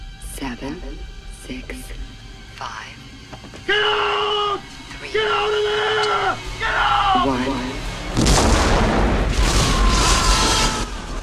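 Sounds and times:
speech: 0.6 - 7.7
crackling debris from explosions: 8.2 - 11.2
explosions ripping apart a starship bridge: 8.2 - 11.2.

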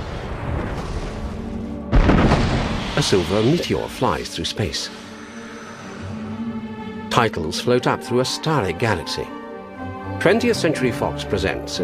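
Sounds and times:
explosions blasting holes in a planet: 0.0 - 5.3
speech: 3.0 - 5.0, 7.2 - 9.4, 10.2 - 11.8.

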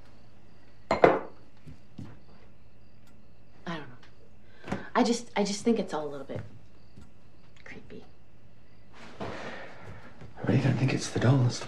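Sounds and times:
dishes knocking together while being washed: 0.9 - 1.4
speech: 5.0 - 6.6, 10.5 - 11.6.

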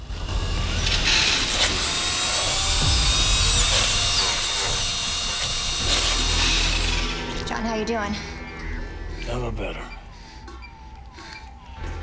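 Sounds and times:
power drill boring holes into a skull: 0.5 - 7.4
speech: 7.8 - 8.3, 9.3 - 10.0.

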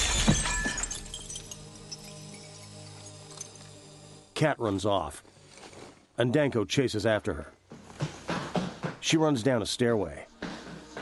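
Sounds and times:
glass doors shattering from gunshot impact: 0.0 - 3.7
glass shards tinkling as they settle: 0.0 - 3.8
speech: 4.4 - 5.4, 6.2 - 7.6, 9.0 - 10.3.

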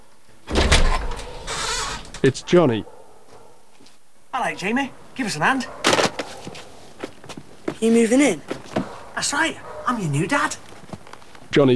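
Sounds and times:
front door opening with a loud rattling scraping rush: 0.0 - 11.7
soft shuffle: 1.3 - 11.7
speech: 2.2 - 3.0, 4.4 - 5.8, 7.8 - 8.5, 9.2 - 10.6, 11.6 - 11.7.

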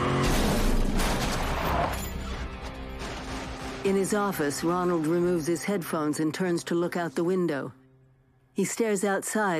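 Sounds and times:
truck smashing into a gate at a salvage yard: 0.1 - 3.9
speech: 3.9 - 7.8, 8.5 - 9.5.

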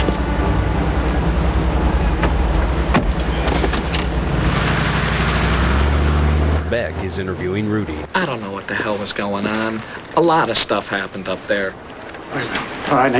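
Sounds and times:
car engine and road rumble: 0.0 - 9.2
speech: 6.8 - 8.3, 9.0 - 13.1.

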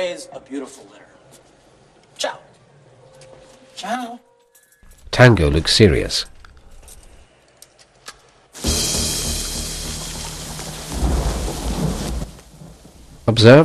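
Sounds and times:
speech: 0.1 - 1.2, 2.2 - 2.5, 3.8 - 4.3, 5.1 - 6.3, 13.3 - 13.6
heavy rain falling in a dark yard: 8.6 - 13.6.

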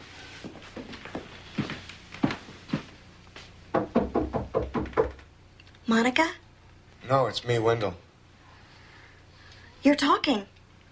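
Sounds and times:
footsteps walking up a staircase: 0.4 - 5.3
speech: 5.9 - 6.4, 7.1 - 8.0, 9.8 - 10.5.

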